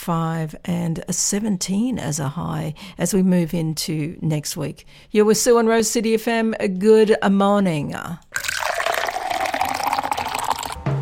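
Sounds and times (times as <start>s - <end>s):
speech: 0.0s - 8.5s
coffee pouring into a cup: 8.3s - 10.8s.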